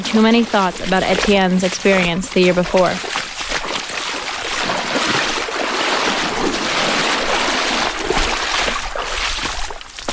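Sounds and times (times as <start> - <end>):
speech: 0.0 - 3.2
fast-flowing river rushing: 0.0 - 9.2.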